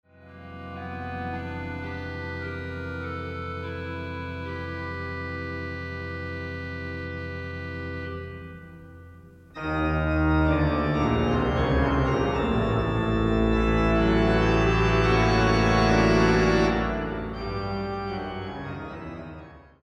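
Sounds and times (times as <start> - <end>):
organ playing: 0.2 - 19.8.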